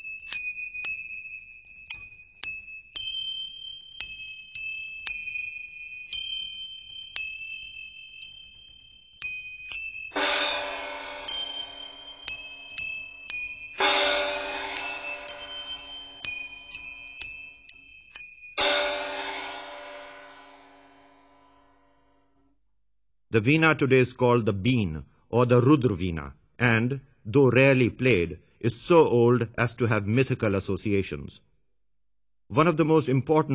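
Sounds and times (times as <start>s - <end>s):
manjira hand cymbals and bells ringing: 0.0s - 20.9s
shimmering cymbal clashes: 10.1s - 16.8s, 18.6s - 21.8s
speech: 23.3s - 31.5s, 32.5s - 33.5s.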